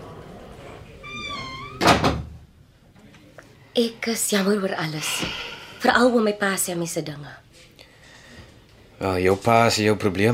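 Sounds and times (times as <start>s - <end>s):
door pushed shut with a loud sharp thud: 1.8s - 2.3s
speech: 3.8s - 7.4s, 9.0s - 10.3s.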